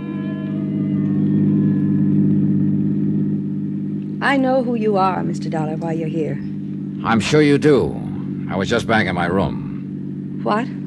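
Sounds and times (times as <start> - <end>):
car engine humming as the car pulls away: 0.0 - 10.8
speech: 4.2 - 9.6, 10.4 - 10.8.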